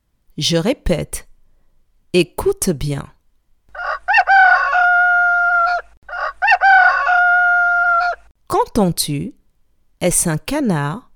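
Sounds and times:
speech: 0:00.4 - 0:01.3, 0:02.1 - 0:03.2, 0:08.8 - 0:09.4, 0:10.0 - 0:11.1
rooster crowing: 0:03.7 - 0:08.3.

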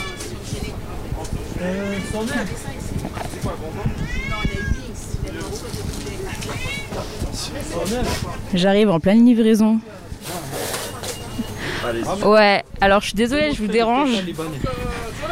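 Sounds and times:
chatter: 0:00.0 - 0:08.6, 0:09.8 - 0:15.3
steady murmur of noise: 0:00.0 - 0:08.6, 0:09.7 - 0:15.3
cat meowing: 0:01.6 - 0:02.5, 0:03.8 - 0:04.9, 0:06.4 - 0:07.0
speech: 0:01.6 - 0:10.4, 0:11.8 - 0:15.0.

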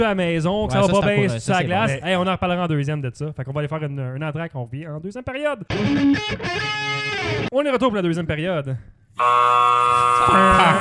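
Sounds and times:
speech: 0:00.0 - 0:10.7
hockey arena buzzer blaring in a long harsh drone: 0:09.2 - 0:10.7.

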